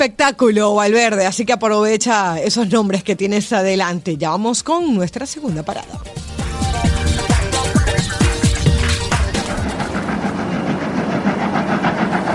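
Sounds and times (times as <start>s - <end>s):
speech: 0.0s - 6.9s
steam locomotive train in motion chugging: 5.5s - 12.3s.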